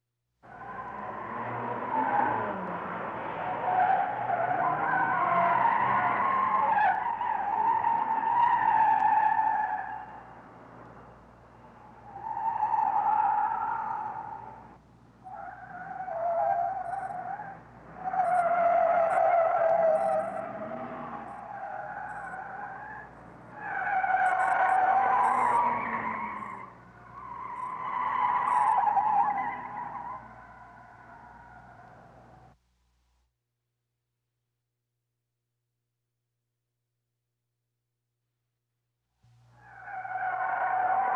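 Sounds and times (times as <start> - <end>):
car chase: 0.4 - 32.6, 39.4 - 41.1.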